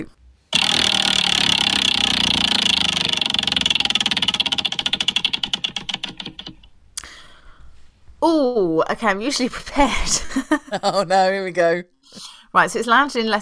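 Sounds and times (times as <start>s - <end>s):
prize wheel spinning with its pointer clicking: 0.5s - 6.7s
speech: 8.2s - 13.4s.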